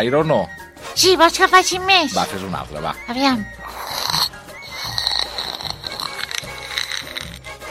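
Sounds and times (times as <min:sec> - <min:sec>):
speech: 0:00.0 - 0:03.6
child making loud rough snorting and breathing noises: 0:03.6 - 0:07.6.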